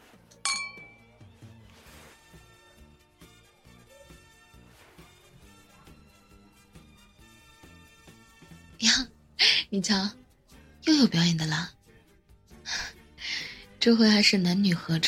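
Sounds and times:
soft music: 0.0s - 15.0s
glasses clinking in a toast: 0.4s - 1.1s
speech: 9.7s - 10.2s, 11.0s - 11.8s, 13.8s - 15.0s.

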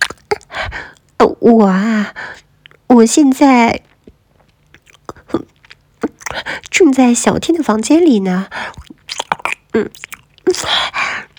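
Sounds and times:
person chewing and slurping a large ice cream: 0.0s - 1.1s, 3.8s - 6.8s, 8.6s - 11.3s
speech: 1.2s - 3.9s, 6.8s - 8.8s, 9.8s - 10.9s.

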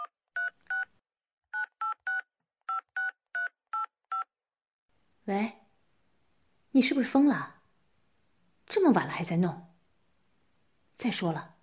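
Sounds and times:
telephone keypad dialing tones: 0.0s - 0.9s, 1.6s - 4.2s
speech: 5.3s - 5.6s, 6.8s - 7.6s, 8.7s - 9.7s, 11.0s - 11.5s.

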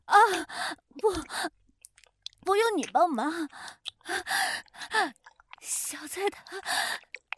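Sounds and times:
woman panting heavily, tired out from tidying: 0.3s - 1.5s, 3.6s - 5.1s, 6.5s - 7.0s
speech: 2.8s - 5.1s.

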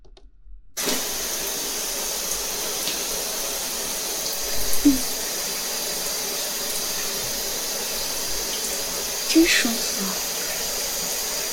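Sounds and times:
water running for a hot bath: 0.8s - 11.5s
speech: 4.8s - 5.1s, 9.5s - 10.2s.

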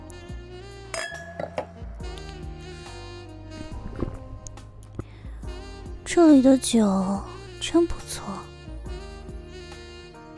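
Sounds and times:
steady music: 0.0s - 10.3s
glasses clinking together in a toast: 0.9s - 1.9s
speech: 6.1s - 8.4s.

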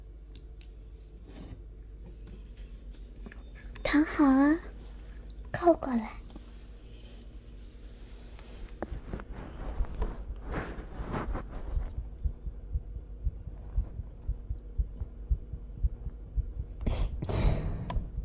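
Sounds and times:
speech: 4.0s - 4.7s, 5.6s - 6.2s
soft rustling of fabric and movement: 6.4s - 12.2s
fast heartbeat of a woman: 9.7s - 18.2s.

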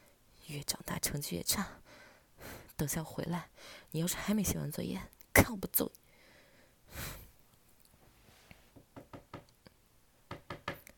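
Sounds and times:
speech: 0.5s - 1.8s, 2.8s - 6.0s
police officer knocking sharply on a door: 8.8s - 9.5s, 10.3s - 10.8s.

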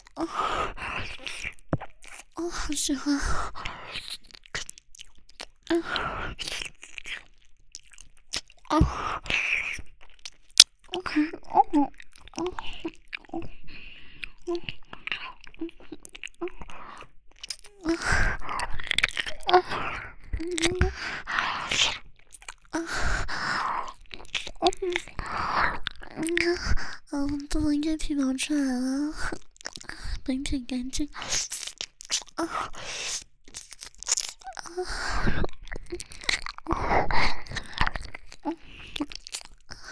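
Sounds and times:
soft breathy vocal sounds: 0.0s - 4.2s, 8.7s - 9.9s, 11.0s - 22.0s, 22.7s - 31.6s, 34.4s - 39.9s
hard crunchy food being bitten and chewed: 0.0s - 39.9s
speech: 0.2s - 1.6s, 2.4s - 4.1s, 5.7s - 6.4s.

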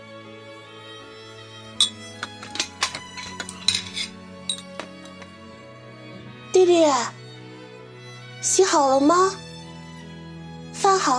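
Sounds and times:
dishes and cutlery clinking while cooking a meal at home: 1.8s - 5.4s
speech: 6.6s - 7.2s, 8.4s - 9.4s.

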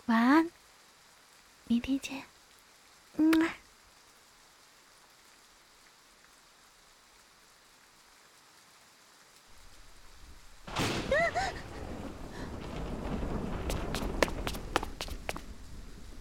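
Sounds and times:
steady rain hissing in a rainstorm: 0.0s - 16.1s
speech: 1.7s - 2.3s, 3.2s - 3.6s
deep rumble of thunder during rainstorm: 9.5s - 16.1s.

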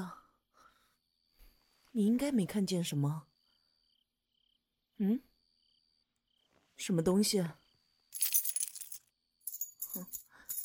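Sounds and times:
speech: 2.0s - 3.3s, 5.0s - 5.3s, 6.8s - 8.2s, 10.0s - 10.2s
bunch of keys jangling: 8.2s - 10.6s.

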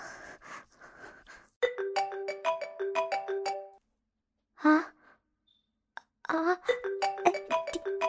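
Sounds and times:
mobile phone ringtone: 1.6s - 3.8s, 6.7s - 8.0s.

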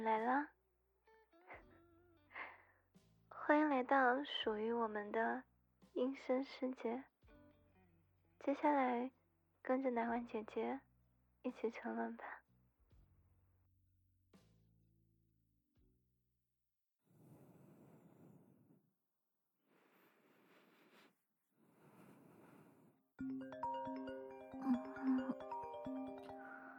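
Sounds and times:
speech: 0.0s - 0.6s, 3.5s - 7.1s, 8.4s - 12.4s
soft breaths: 17.1s - 18.9s, 19.6s - 23.1s, 26.2s - 26.7s
mobile phone ringtone with bright electronic melody: 23.2s - 26.7s.

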